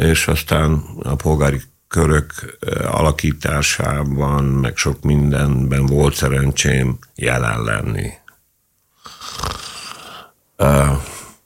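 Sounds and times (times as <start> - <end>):
speech: 0.0 - 8.2, 10.6 - 11.1
heavy rasping snore-like breaths: 9.0 - 11.4.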